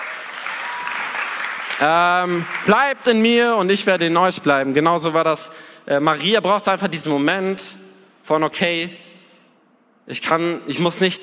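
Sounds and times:
audience applauding at a sermon: 0.0 - 3.2
speech: 1.8 - 9.0, 10.1 - 11.2.

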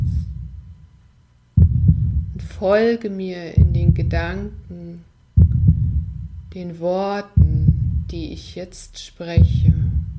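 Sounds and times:
deep heartbeat thumping: 0.0 - 0.9, 1.6 - 2.8, 3.5 - 4.7, 5.3 - 6.6, 7.4 - 8.6, 9.4 - 10.1
speech: 2.6 - 4.7, 6.6 - 9.7.

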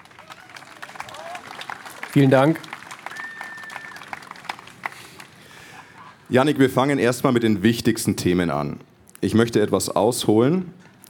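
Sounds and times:
audience applause: 0.0 - 6.3
speech: 2.1 - 2.7, 6.3 - 10.8.

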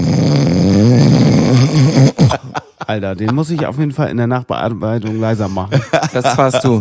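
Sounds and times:
loud snoring: 0.0 - 2.6
laughter: 2.1 - 4.0, 5.1 - 6.8
speech: 2.9 - 6.8.

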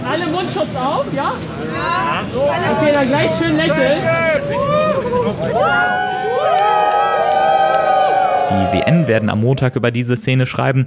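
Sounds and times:
speech: 0.2 - 6.8, 8.5 - 10.8
crowd of about a hundred people cheering for a celebratory photo: 1.4 - 9.8.

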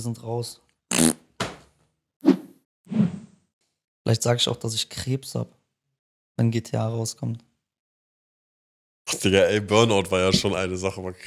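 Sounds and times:
speech: 0.0 - 1.2, 4.1 - 5.6, 6.4 - 7.5, 9.1 - 11.2
fart noises made toward a camera: 0.9 - 1.3.

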